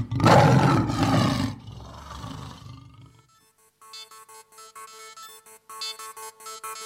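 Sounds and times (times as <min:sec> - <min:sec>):
lion roaring: 0:00.0 - 0:03.2.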